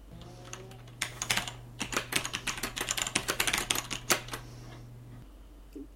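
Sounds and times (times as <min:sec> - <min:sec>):
faint steady hum: 0:00.0 - 0:05.9
fast typing on a spring-key mechanical keyboard: 0:00.4 - 0:04.4.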